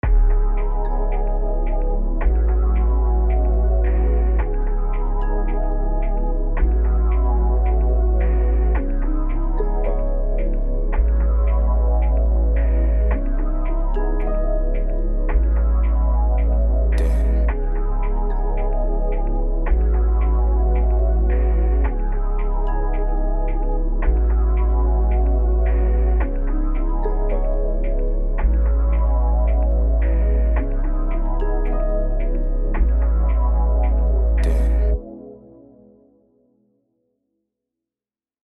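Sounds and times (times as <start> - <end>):
RnB melody loop in C minor at 110 BPM: 0.0 - 35.0.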